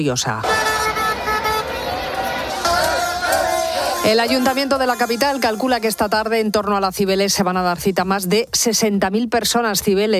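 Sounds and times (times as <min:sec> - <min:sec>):
speech: 0:00.0 - 0:00.9, 0:04.0 - 0:10.1
car horns honking in city traffic in the Spanish capital: 0:00.4 - 0:06.4
murmur of crowd voices: 0:00.4 - 0:07.0.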